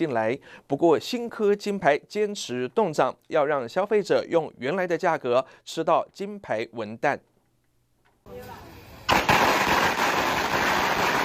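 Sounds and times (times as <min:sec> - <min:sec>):
speech: 0:00.0 - 0:07.3
string of firecrackers crackling and popping: 0:09.0 - 0:11.2.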